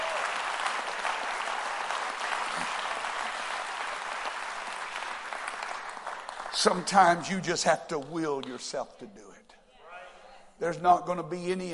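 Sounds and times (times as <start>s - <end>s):
audience clapping hands in praise: 0.0s - 7.2s
speech: 6.6s - 9.3s, 10.6s - 11.7s.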